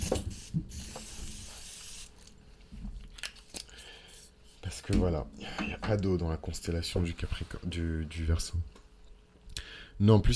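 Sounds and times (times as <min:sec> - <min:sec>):
water spray bottle spritzing: 0:00.0 - 0:02.3
speech: 0:04.9 - 0:08.8, 0:10.0 - 0:10.3.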